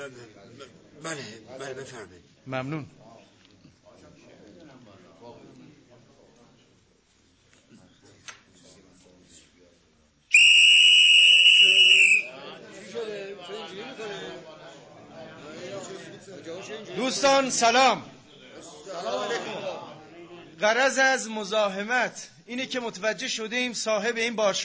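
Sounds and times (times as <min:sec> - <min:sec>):
talk and chatter in a club: 0:00.0 - 0:24.6
speech: 0:00.1 - 0:03.0, 0:17.0 - 0:18.1, 0:20.6 - 0:24.6
long shrill whistle blast in a club: 0:10.3 - 0:12.3.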